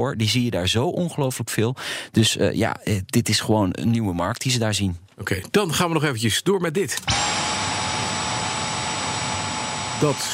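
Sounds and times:
speech: 0:00.0 - 0:07.6, 0:10.0 - 0:10.3
bagless vacuum cleaner running: 0:07.1 - 0:10.3.

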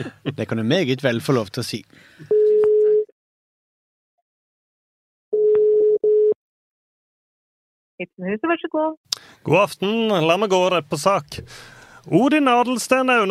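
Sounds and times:
speech: 0:00.0 - 0:02.4, 0:08.0 - 0:13.2
telephone ringback tone: 0:05.4 - 0:06.4.

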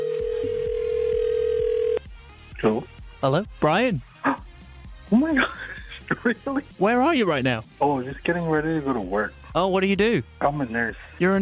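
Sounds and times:
electronic telephone ringback tone: 0:00.0 - 0:02.0
quiet rhythmic music bed: 0:00.0 - 0:11.4
speech: 0:02.6 - 0:04.1, 0:05.1 - 0:11.4.

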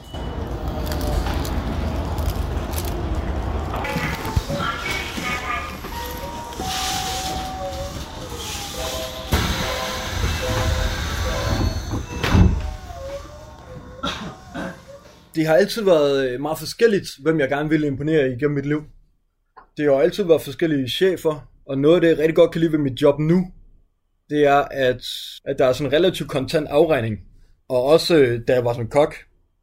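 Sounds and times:
train rolling with low rumble, hiss and whining tones: 0:00.0 - 0:15.4
train sliding doors clunking: 0:00.0 - 0:15.4
speech: 0:15.4 - 0:19.0, 0:19.8 - 0:23.6, 0:24.3 - 0:29.3.

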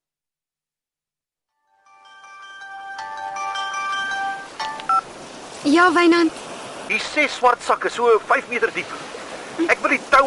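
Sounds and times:
electronic telephone tones as a call is dialed: 0:03.3 - 0:05.1
short sharp telephone beeps: 0:04.6 - 0:05.1
speech: 0:05.6 - 0:10.2.

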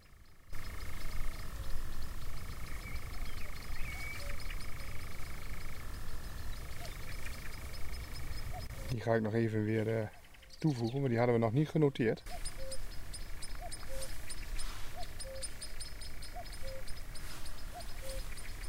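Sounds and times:
low outdoor rumble: 0:00.0 - 0:18.6
European nightjar churring call: 0:00.6 - 0:11.0, 0:12.3 - 0:18.6
speech: 0:08.9 - 0:12.5.

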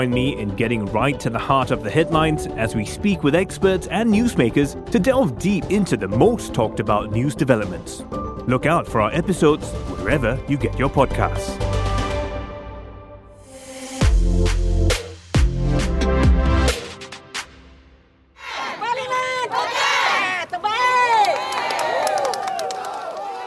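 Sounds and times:
speech: 0:00.0 - 0:11.8
short burst of music: 0:00.0 - 0:18.4
large crowd of supporters shouting, chanting and cheering at a courthouse: 0:18.4 - 0:23.4.

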